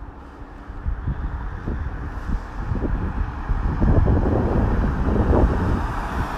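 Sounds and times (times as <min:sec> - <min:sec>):
gusty wind buffeting the microphone: 0:00.0 - 0:06.3
vehicle rumbling on a quiet main road: 0:00.0 - 0:06.3.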